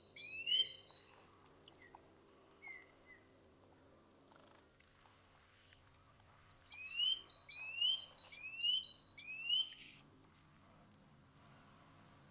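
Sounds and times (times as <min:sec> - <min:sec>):
great tit Parus major singing: 0:00.0 - 0:01.1, 0:06.5 - 0:10.0.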